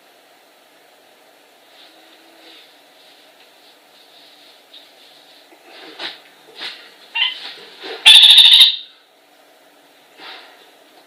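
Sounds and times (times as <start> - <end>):
Orange-fronted parakeet chattering: 8.0 - 8.9.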